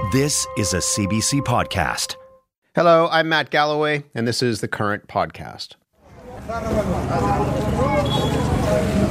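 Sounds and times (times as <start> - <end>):
speech: 0.1 - 8.3
trucks crowding at a border crossing, engines rumbling: 6.0 - 9.0.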